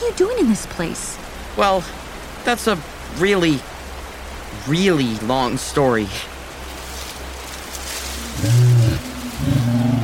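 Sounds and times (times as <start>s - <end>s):
speech: 0.0s - 3.7s, 4.5s - 6.3s
faint steady hiss: 0.0s - 10.0s
lion roaring: 8.2s - 10.0s.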